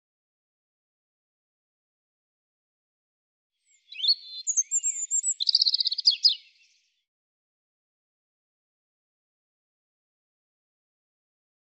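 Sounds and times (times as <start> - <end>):
European robin song: 3.6 - 7.0.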